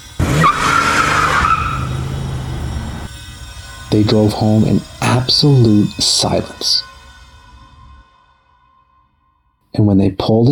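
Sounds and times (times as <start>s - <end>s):
car engine roaring as the vehicle speeds away: 0.0s - 3.1s
car tires screeching as car peels out: 0.0s - 3.1s
speech: 3.9s - 6.9s, 9.8s - 10.4s.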